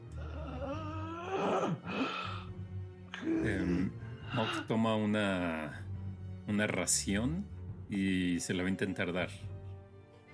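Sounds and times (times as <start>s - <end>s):
voice imitating the labored gasping breathing of an emaciated old man: 0.0s - 4.7s
speech: 3.4s - 5.8s, 6.5s - 9.5s.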